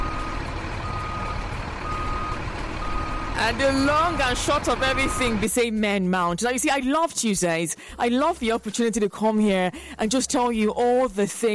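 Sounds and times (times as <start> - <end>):
garbage truck reversing warning beeps: 0.0 - 5.5
garbage truck collecting trash idling: 0.0 - 5.6
speech: 3.4 - 11.5.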